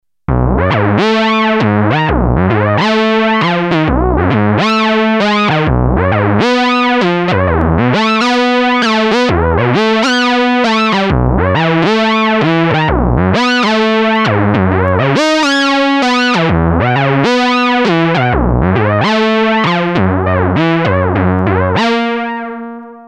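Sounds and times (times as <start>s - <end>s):
Novation Bass Station II synthesizer solo: 0.3s - 23.0s.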